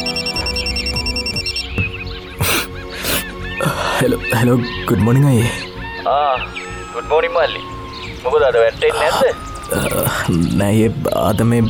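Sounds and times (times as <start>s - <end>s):
mobile phone ringing with a melodic ringtone for an incoming call: 0.0s - 1.7s, 6.5s - 9.9s
speech: 4.0s - 11.6s.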